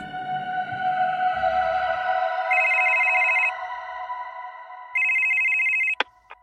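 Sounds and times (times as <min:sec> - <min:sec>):
steady tonal background: 0:00.0 - 0:06.4
electronic telephone ring tone for an outgoing call: 0:02.5 - 0:03.5, 0:05.0 - 0:06.4.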